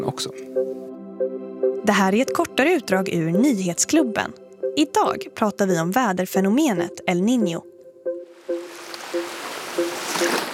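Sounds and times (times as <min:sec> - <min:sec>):
speech: 0:00.0 - 0:00.7, 0:01.9 - 0:07.7
calm ocean waves lapping: 0:08.3 - 0:10.5.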